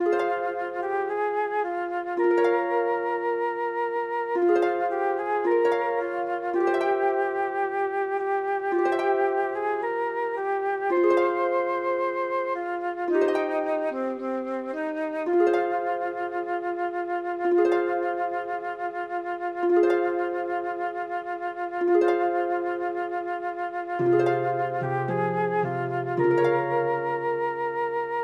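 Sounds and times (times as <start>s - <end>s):
flute: 0.0s - 28.2s
harp: 0.0s - 28.2s.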